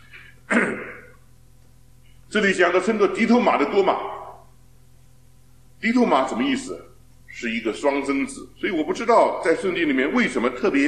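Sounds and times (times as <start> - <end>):
lecturer with a sore throat coughing: 0.1 - 1.2
speech: 2.3 - 4.2, 5.8 - 10.8.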